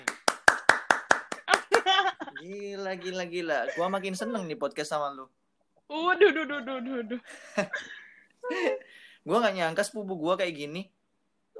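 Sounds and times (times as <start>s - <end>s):
crisp hand claps: 0.0s - 2.1s
person laughing or exclaiming: 1.4s - 4.4s, 6.2s - 8.8s
speech: 2.4s - 11.0s.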